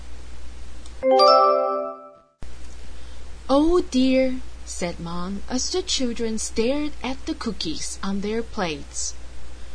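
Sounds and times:
doorbell chiming: 0:01.0 - 0:02.2
speech: 0:03.5 - 0:09.2.

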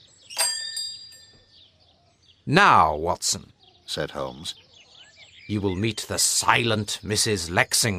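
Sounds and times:
doorbell ringing with bright metallic strike: 0:00.3 - 0:01.6
speech: 0:02.5 - 0:04.6, 0:05.5 - 0:07.9.

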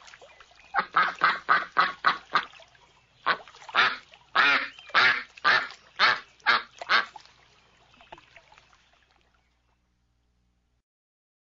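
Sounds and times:
nasal duck quacks: 0:00.7 - 0:02.6, 0:03.2 - 0:07.2.

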